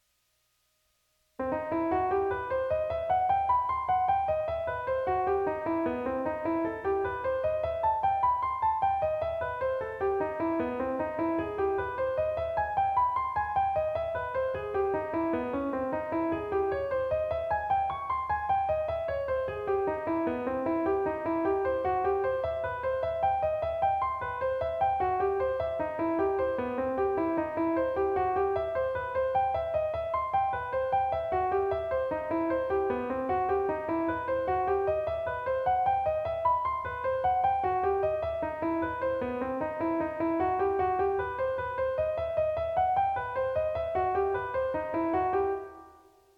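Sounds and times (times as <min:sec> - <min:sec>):
jazz piano major triad embellishment: 0:01.4 - 0:46.3.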